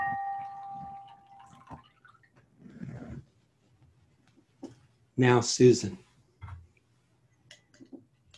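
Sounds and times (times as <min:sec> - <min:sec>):
lingering ringing tone: 0:00.0 - 0:01.4
faint water drips: 0:00.0 - 0:02.5
water poured into a vessel: 0:00.4 - 0:02.4
speech: 0:05.2 - 0:06.0.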